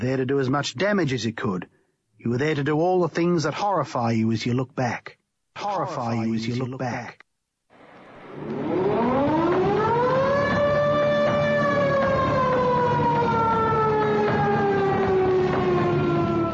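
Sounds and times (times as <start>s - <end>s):
speech: 0.0s - 7.2s, 8.4s - 8.8s
air raid siren wailing: 7.8s - 16.5s.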